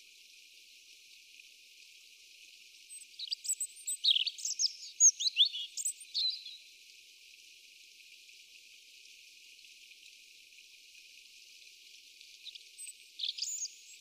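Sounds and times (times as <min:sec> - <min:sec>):
European robin Erithacus rubecula singing high thin warbled notes and trills: 0:03.1 - 0:06.6, 0:12.4 - 0:13.9.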